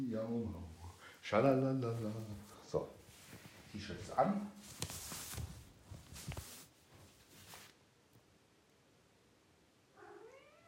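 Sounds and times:
speech: 0:00.0 - 0:02.9, 0:03.7 - 0:05.0
rustling: 0:00.2 - 0:08.2
soft bumps: 0:01.8 - 0:07.8
cat meowing: 0:10.0 - 0:10.6.

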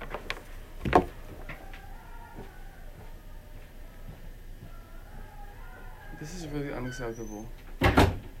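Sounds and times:
quiet steady hum in a soundproof room: 0:00.0 - 0:06.7
speech: 0:06.3 - 0:07.6
door of a soundproof room thudding shut: 0:07.8 - 0:08.3.

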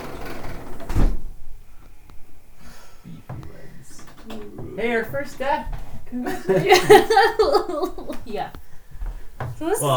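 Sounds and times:
door thudding shut: 0:00.6 - 0:01.4
speech: 0:04.8 - 0:08.6, 0:09.6 - 0:09.9
laughter: 0:06.1 - 0:08.3.

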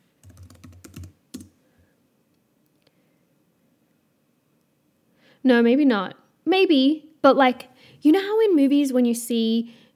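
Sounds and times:
computer keyboard typing: 0:00.2 - 0:01.6
speech: 0:05.4 - 0:09.8.

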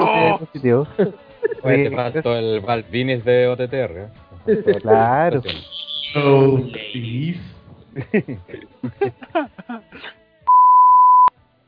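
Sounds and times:
voice-like vocal sounds and chattering bursts: 0:00.0 - 0:01.2, 0:04.4 - 0:07.8
laughter: 0:00.0 - 0:02.2, 0:04.5 - 0:05.6, 0:07.8 - 0:10.2
speech: 0:00.4 - 0:10.2.

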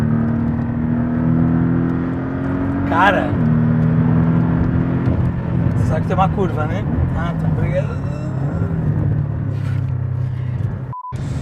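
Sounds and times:
car driving along a road with engine hum and tire rumble: 0:00.0 - 0:11.3
speech: 0:02.9 - 0:03.5, 0:05.9 - 0:08.2
short electronic beep: 0:10.9 - 0:11.3.

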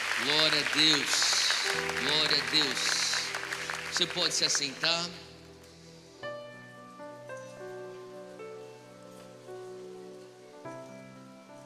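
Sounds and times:
large church audience applauding after a prayer: 0:00.0 - 0:05.3
sustained keyboard chords: 0:00.0 - 0:11.6
speech: 0:00.2 - 0:03.0, 0:03.9 - 0:05.3.

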